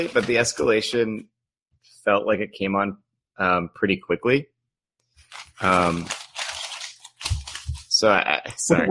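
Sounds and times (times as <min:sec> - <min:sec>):
papers being shuffled: 0:00.0 - 0:01.1, 0:05.2 - 0:08.1
speech: 0:00.0 - 0:01.4, 0:02.0 - 0:04.5, 0:05.3 - 0:06.2, 0:08.0 - 0:08.9.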